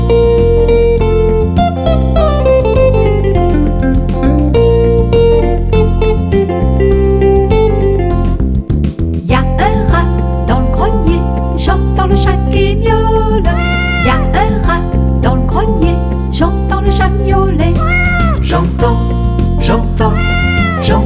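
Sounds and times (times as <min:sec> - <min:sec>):
loud steady musical backing: 0:00.0 - 0:21.0
cat meowing: 0:13.5 - 0:14.6, 0:17.7 - 0:18.6, 0:20.0 - 0:21.0.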